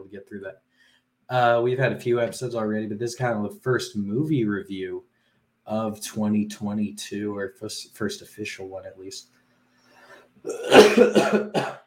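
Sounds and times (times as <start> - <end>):
speech: 0.1 - 9.4, 10.4 - 11.8
person coughing harsh rough hacks: 10.5 - 11.8.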